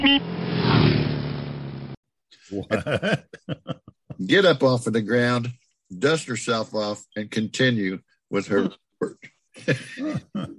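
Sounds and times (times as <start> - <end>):
car engine roaring: 0.0 - 2.0
speech: 2.5 - 3.2, 4.3 - 10.5
laughter: 2.5 - 4.3, 9.6 - 10.5.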